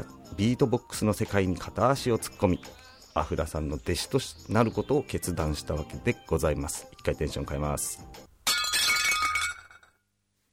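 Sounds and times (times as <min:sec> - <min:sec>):
speech: 0:00.0 - 0:08.2
plate breaking: 0:08.4 - 0:10.0
tinkling clatter of plate pieces: 0:08.5 - 0:10.0.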